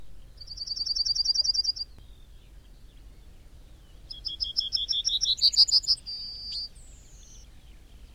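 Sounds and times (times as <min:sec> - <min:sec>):
bird singing a fast high trill and thin whistle: 0:00.4 - 0:01.9, 0:04.1 - 0:07.4.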